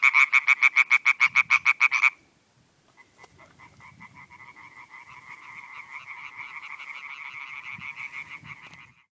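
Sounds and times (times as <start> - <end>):
European tree frogs croaking: 0.0 - 2.3, 2.9 - 9.0.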